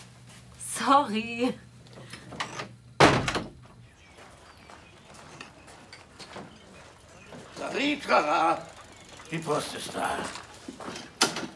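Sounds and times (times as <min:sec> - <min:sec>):
speech: 0:00.8 - 0:02.4, 0:07.8 - 0:08.7, 0:09.3 - 0:11.0
door rattling: 0:02.3 - 0:03.7
door shutting with a thud: 0:02.4 - 0:03.8.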